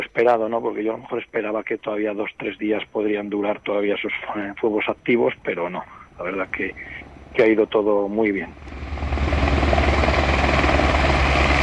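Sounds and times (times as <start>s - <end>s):
speech: 0.2s - 9.1s
helicopters refilling from a municipal swimming pool basin, rotor roar: 6.8s - 11.6s.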